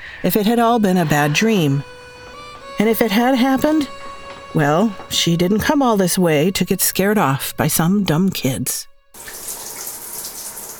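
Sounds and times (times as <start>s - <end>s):
speech: 0.2s - 1.9s, 2.8s - 9.4s
shower water running: 9.2s - 10.7s.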